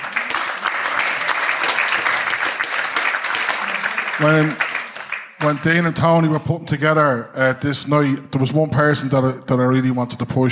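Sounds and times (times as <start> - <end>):
crowd applauding at the end of a night of performances: 0.0 - 6.4
speech: 4.2 - 4.6, 5.4 - 10.5.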